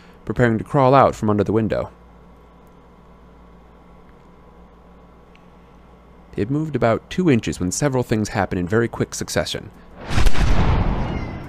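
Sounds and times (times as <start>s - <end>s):
speech: 0.3s - 2.0s, 6.4s - 9.9s
loud echoing crack: 10.0s - 11.4s.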